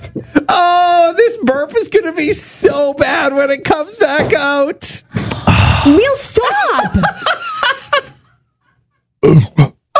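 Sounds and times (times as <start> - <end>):
speech: 0.0 - 7.5, 9.2 - 9.7
burp: 9.2 - 9.8.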